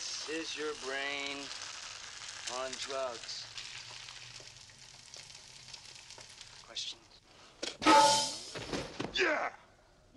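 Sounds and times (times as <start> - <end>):
eggs sizzling in a hot frying pan: 0.0 - 7.2
speech: 0.2 - 1.7, 2.5 - 3.5, 6.8 - 7.0, 9.2 - 9.6.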